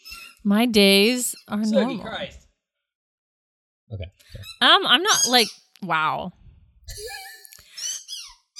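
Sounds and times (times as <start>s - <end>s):
speech: 0.4s - 2.4s, 3.9s - 7.3s
dog's squeaky toy squeaking: 4.4s - 5.5s, 7.7s - 8.5s.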